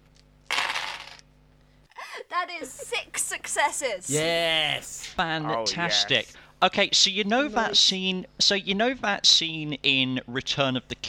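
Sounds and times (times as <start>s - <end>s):
twelve six-sided dice clattering across a hard surface: 0.5s - 1.2s
speech: 2.4s - 11.0s.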